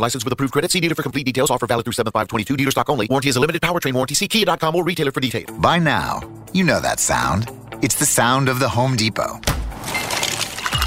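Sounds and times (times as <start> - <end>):
speech: 0.0 - 10.4
slow-melting craft ice cubes clinking and crackling: 9.8 - 10.8.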